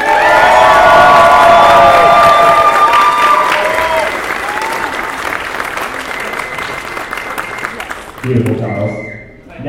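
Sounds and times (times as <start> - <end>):
large crowd shouting: 0.0 - 5.0
large crowd clapping: 0.0 - 9.2.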